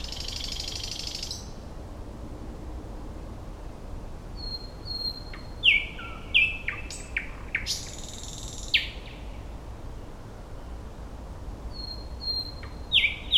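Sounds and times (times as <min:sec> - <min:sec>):
thrush nightingale Luscinia luscinia singing: 0:00.0 - 0:01.6, 0:04.4 - 0:10.8, 0:11.7 - 0:13.3
faint hiss: 0:00.0 - 0:13.3.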